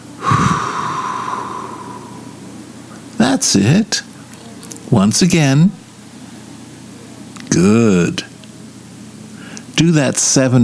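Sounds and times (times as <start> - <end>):
person inhaling through the nose and exhaling through the mouth in a breathing exercise: 0.2 - 2.5, 9.4 - 9.7
speech: 3.4 - 4.1, 4.9 - 5.8, 7.6 - 8.3, 9.8 - 10.6.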